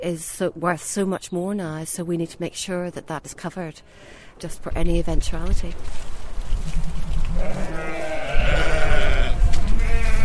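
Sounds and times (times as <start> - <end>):
speech: 0.0 - 8.6
sheep bleating on a farm: 7.4 - 10.2.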